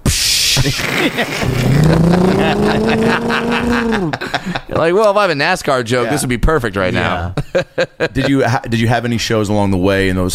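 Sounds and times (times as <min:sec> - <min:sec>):
laughter: 0:00.6 - 0:05.1, 0:06.9 - 0:08.5
speech: 0:00.6 - 0:10.3
breathy noise: 0:01.3 - 0:04.7
voice imitating a passing bus engine during a comedy set: 0:01.4 - 0:04.2.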